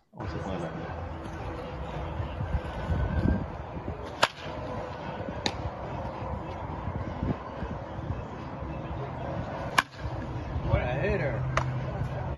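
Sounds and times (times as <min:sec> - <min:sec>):
people talking outdoors: 0:00.2 - 0:12.3
baseball bat hitting balls in batting practice: 0:03.2 - 0:06.7, 0:09.4 - 0:10.6, 0:11.3 - 0:12.1.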